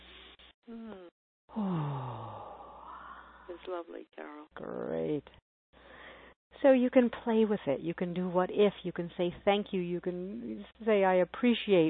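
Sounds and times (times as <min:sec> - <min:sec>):
short breathy voiced sounds: 0:00.7 - 0:01.9
big deep breath during a guided relaxation exercise released as a long voiced sigh: 0:01.5 - 0:03.5
speech: 0:03.6 - 0:05.4, 0:06.6 - 0:11.8.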